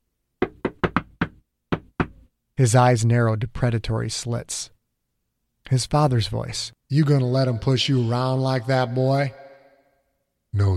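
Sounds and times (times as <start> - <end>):
knocking on a door: 0.4 - 2.2
speech: 2.6 - 4.8, 5.7 - 9.4, 10.5 - 10.7.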